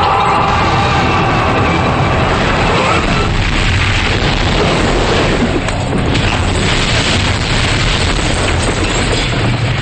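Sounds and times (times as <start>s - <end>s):
enormous explosion with fireballs: 0.0s - 9.7s.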